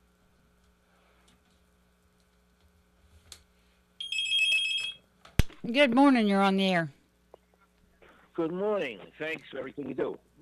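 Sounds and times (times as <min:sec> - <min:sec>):
hum: 0:00.0 - 0:10.4
telephone ringing: 0:04.0 - 0:05.0
speech: 0:05.6 - 0:07.0, 0:08.4 - 0:10.3.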